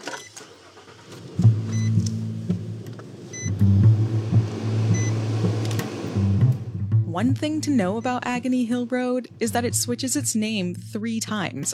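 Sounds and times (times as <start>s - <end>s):
pickup truck engine pulling away: 0.0s - 7.0s
speech: 7.2s - 11.7s.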